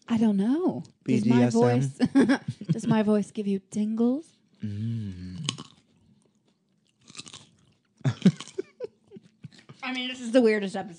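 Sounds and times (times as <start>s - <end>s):
speech: 0.1s - 5.2s, 9.9s - 10.9s
people chewing and biting while eating: 4.3s - 9.9s.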